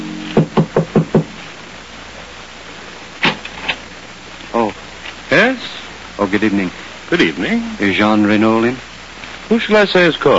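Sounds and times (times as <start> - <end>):
faint thumps of a latch or the door being handled: 0.0 - 1.4
knocking on the wooden front door of a house in Paris: 0.4 - 1.4
speech: 5.4 - 8.9, 9.5 - 10.3.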